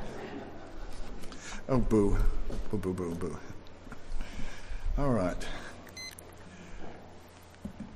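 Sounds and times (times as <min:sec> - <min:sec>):
speech: 0:01.7 - 0:03.5, 0:05.0 - 0:05.6
timer beep-click: 0:05.9 - 0:06.2.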